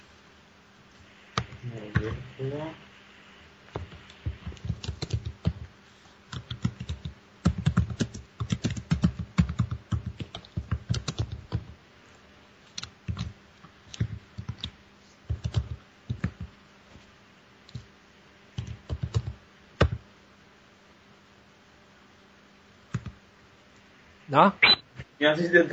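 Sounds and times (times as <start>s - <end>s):
speech: 1.6s - 2.9s, 24.4s - 25.7s
typing program code on a computer keyboard: 3.8s - 5.7s, 6.3s - 11.7s, 12.7s - 16.5s, 18.6s - 20.0s, 22.9s - 23.2s
synthetic screen-reader voice: 24.6s - 24.8s.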